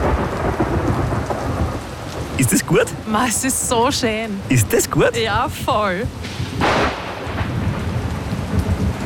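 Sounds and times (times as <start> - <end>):
loud crack-like burst of thunder: 0.0 - 2.4, 6.0 - 9.0
deep rolling rumble of thunder: 0.0 - 9.0
steady rain: 0.0 - 9.0
speech: 2.4 - 6.9.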